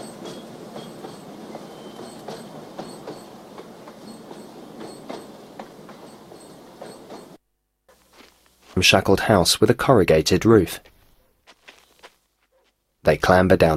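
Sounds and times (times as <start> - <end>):
freight train rolling through an Arizona landscape: 0.0 - 7.4
speech: 8.8 - 10.9, 13.0 - 13.7.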